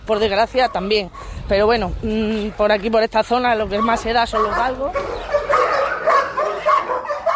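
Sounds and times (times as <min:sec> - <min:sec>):
speech: 0:00.1 - 0:05.3
bearded dog barking excitedly in welcome: 0:03.8 - 0:07.3.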